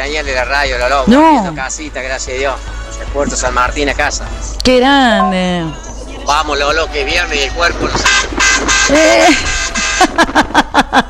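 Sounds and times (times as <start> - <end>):
busy street noise: 0.0 - 11.0
speech: 0.0 - 11.0
laughter: 5.6 - 7.9, 8.9 - 11.0
vehicle horn honking: 8.0 - 10.2.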